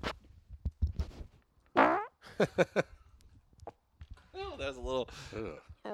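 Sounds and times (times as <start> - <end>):
fart into a microphone: 1.8 - 2.2
speech: 2.4 - 3.0, 4.7 - 5.9.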